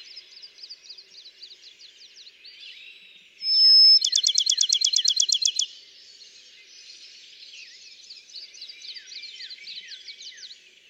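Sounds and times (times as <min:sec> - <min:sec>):
Bachman's sparrow song with whistle and trill: 0:03.4 - 0:05.7.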